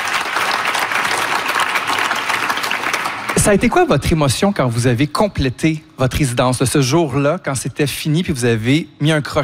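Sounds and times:
audience applause: 0:00.0 - 0:03.6
speech: 0:03.5 - 0:09.4.

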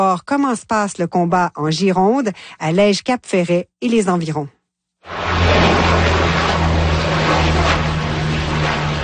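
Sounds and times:
speech: 0:00.0 - 0:06.1
water-bomber aircraft flying overhead: 0:05.1 - 0:09.0.

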